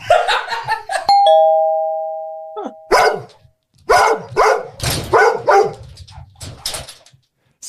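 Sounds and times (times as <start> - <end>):
two-tone doorbell chime: 1.1 - 3.0
dogs barking loudly: 2.9 - 5.9.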